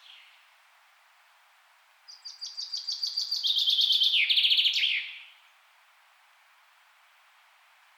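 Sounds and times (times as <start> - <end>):
Common chaffinch Fringilla coelebs singing: 2.1 - 5.4.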